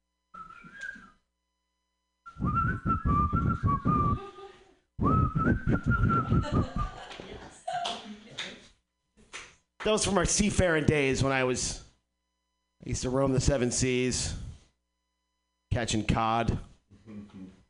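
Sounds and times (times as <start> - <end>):
person whistling a wavering warbling tune: 0.4 - 1.2, 2.3 - 4.3, 5.0 - 7.0
speech: 3.6 - 4.5, 5.4 - 7.2, 9.8 - 11.8, 12.9 - 14.4, 15.8 - 17.5
laughter: 6.2 - 8.4.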